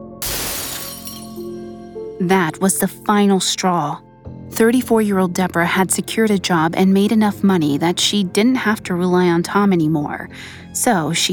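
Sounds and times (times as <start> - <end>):
chandelier glass shattering: 0.2 - 1.5
ringing, tinkling chandelier glass shards: 0.2 - 1.5
speech: 2.2 - 11.3.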